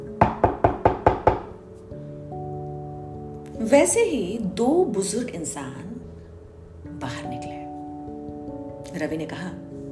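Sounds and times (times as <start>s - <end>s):
firm knocks on a wooden house door: 0.2s - 1.6s
speech: 3.6s - 6.0s, 7.0s - 7.5s, 9.0s - 9.6s.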